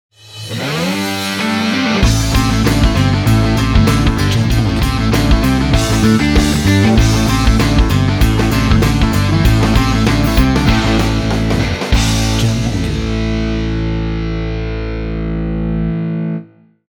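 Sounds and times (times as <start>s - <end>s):
powerful logo ident music: 0.4s - 15.9s.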